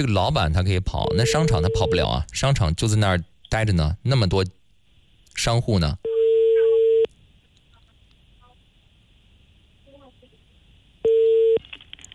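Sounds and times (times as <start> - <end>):
speech: 0.0 - 4.6, 5.4 - 6.1
faint noise: 0.0 - 12.1
telephone busy tone after call hung up: 6.1 - 7.1, 11.0 - 11.6.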